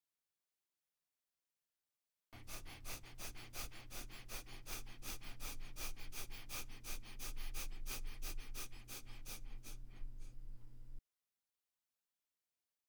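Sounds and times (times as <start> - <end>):
rapid forceful abdominal breathing exercise: 2.4 - 10.8.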